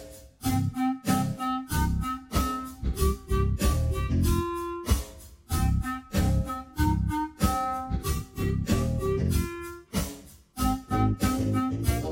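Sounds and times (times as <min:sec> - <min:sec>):
slow clarinet: 0:00.4 - 0:12.1.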